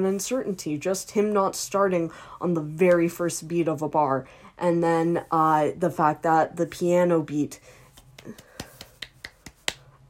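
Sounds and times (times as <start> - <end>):
speech: 0.0 - 8.4
rhythmic clapping in a music track: 7.9 - 9.9.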